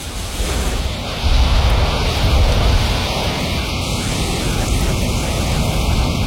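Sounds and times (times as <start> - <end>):
strong wind roaring at the coast: 0.0 - 6.2.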